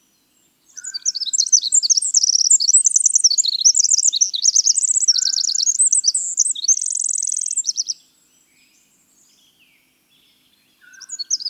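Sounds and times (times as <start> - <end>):
winter wren song of rapid bubbling high trills: 0.7 - 8.0, 10.8 - 11.4.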